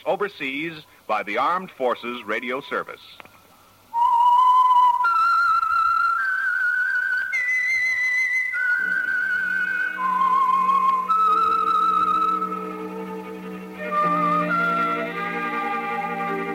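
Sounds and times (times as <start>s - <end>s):
speech: 0.0s - 3.3s
clear eerie whistled melody of sustained notes: 3.9s - 16.5s
low sustained orchestral chords: 8.8s - 16.5s.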